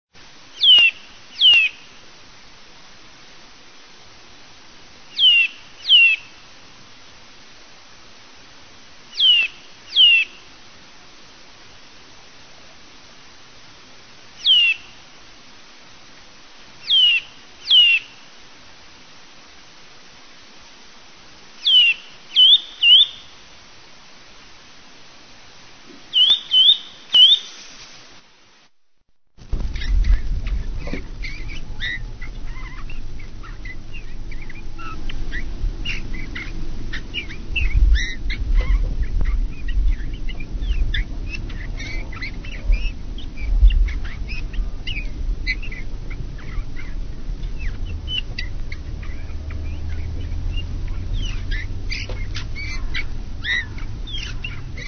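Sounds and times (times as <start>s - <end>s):
Eurasian bullfinch singing: 0.5s - 2.0s, 5.1s - 6.5s, 9.0s - 10.5s, 14.4s - 15.1s, 16.8s - 18.3s, 21.6s - 23.4s, 26.0s - 27.6s, 29.7s - 54.8s.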